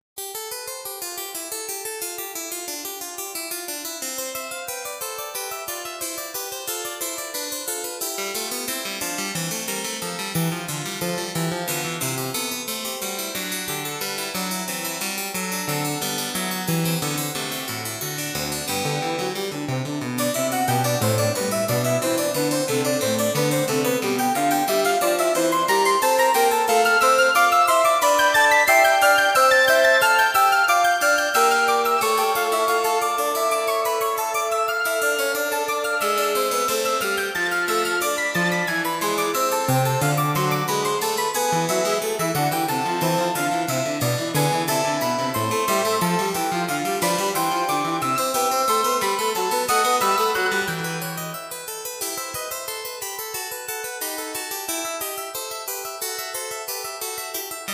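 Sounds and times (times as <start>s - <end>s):
clavier: 0.2s - 57.7s
Baroque piece played on flute and clavier: 20.2s - 51.4s.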